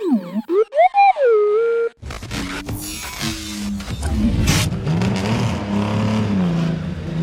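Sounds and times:
short burst of warbling electronic tones: 0.0 - 2.0
car engine revving and accelerating away: 3.3 - 7.2.

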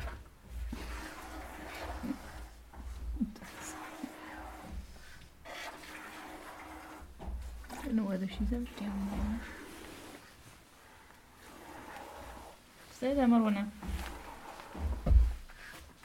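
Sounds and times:
hand-milking into a bucket with milk frothing: 0.0 - 10.3, 11.4 - 12.6
faint noise: 0.0 - 16.0
speech: 8.3 - 9.6, 13.0 - 13.8.

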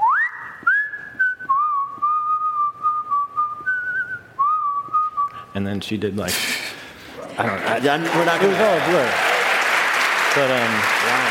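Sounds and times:
person whistling a slow melody: 0.0 - 5.4
speech: 5.6 - 6.7, 7.4 - 9.3, 10.3 - 11.2.

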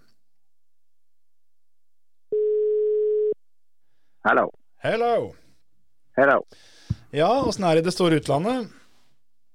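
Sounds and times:
electronic ringback tone from an outgoing phone call: 2.3 - 3.4
speech: 4.2 - 5.4, 6.2 - 8.8.

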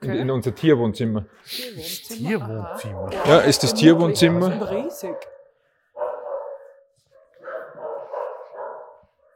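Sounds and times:
speech: 0.0 - 5.3
dogs barking: 2.7 - 4.0, 4.8 - 9.3.

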